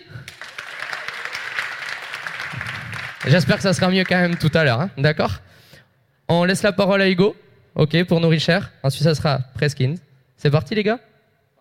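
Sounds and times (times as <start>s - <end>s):
audience applause at a pitch competition event: 0.0s - 4.8s
speech: 3.2s - 5.5s, 6.3s - 11.1s.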